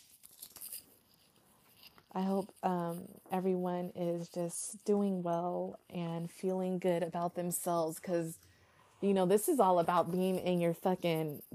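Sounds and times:
deck of tarot cards being shuffled: 0.0 - 2.1
speech: 2.1 - 8.4, 9.0 - 11.5.

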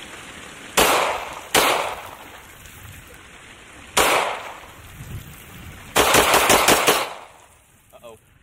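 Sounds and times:
video game gun loaded with pond scum firing: 0.8 - 2.2, 4.0 - 4.6, 6.0 - 7.4.

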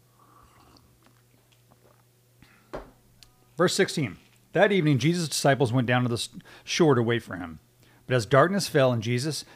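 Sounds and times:
person sipping coffee: 0.1 - 2.0
slurp: 0.2 - 0.9
speech: 3.6 - 9.5.

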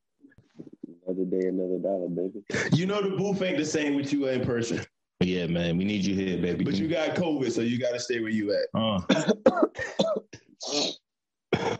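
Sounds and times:
speech: 1.2 - 11.0
person coughing harshly: 8.8 - 11.7.

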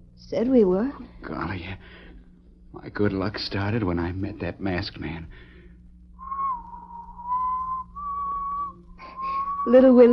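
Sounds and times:
low steady hum: 0.0 - 10.1
speech: 0.3 - 2.1, 2.7 - 5.5, 9.6 - 10.1
person whistling a wedding tune off-key: 6.2 - 10.1.

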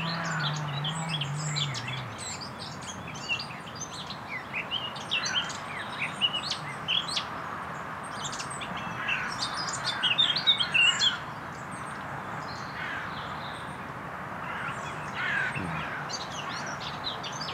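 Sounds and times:
engine-like drone: 0.0 - 3.7, 15.2 - 16.1
northern nightingale singing in a thicket: 0.0 - 17.5.

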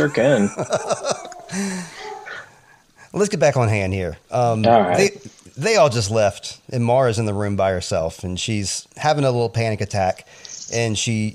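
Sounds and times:
laughter: 0.0 - 1.9
speech: 0.0 - 2.0, 3.1 - 11.3
dog barking yappily and whining: 0.8 - 2.5.

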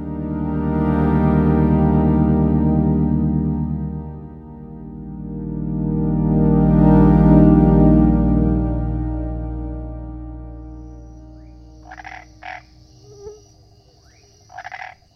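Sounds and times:
sustained low tone: 0.0 - 13.7
toad croaking at night on pavement: 11.3 - 15.1.

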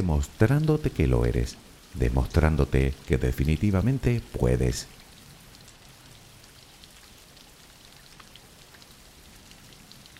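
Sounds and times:
speech: 0.0 - 5.0
steady rain pattering on a surface: 0.0 - 10.1.

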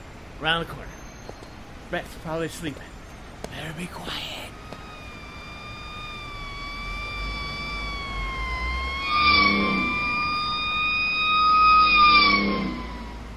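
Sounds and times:
low rumble of traffic: 0.0 - 11.2
speech: 0.4 - 1.0, 1.9 - 4.4
emergency vehicle sirens wailing: 3.6 - 13.3.

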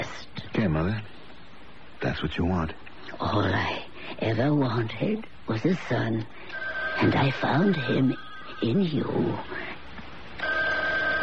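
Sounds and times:
speech: 0.6 - 1.1, 2.0 - 9.6
telephone ringing with an electronic ring tone: 6.4 - 9.4, 10.4 - 11.2.

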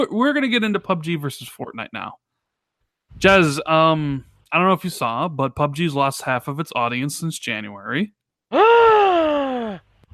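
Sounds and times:
speech: 0.0 - 2.2, 3.1 - 8.9
exaggerated theatrical mock gasp of surprise: 8.5 - 10.1.

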